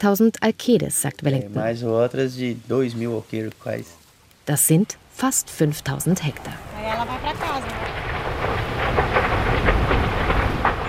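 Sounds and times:
speech: 0.0s - 8.0s
fire roaring through dense still-standing rainforest: 1.6s - 10.8s.

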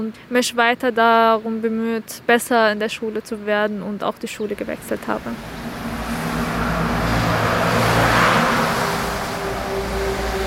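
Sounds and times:
speech: 0.0s - 5.7s
heavy road traffic roar: 4.4s - 10.4s
low engine drones: 4.5s - 10.4s
loud vehicle passing: 4.6s - 10.4s.

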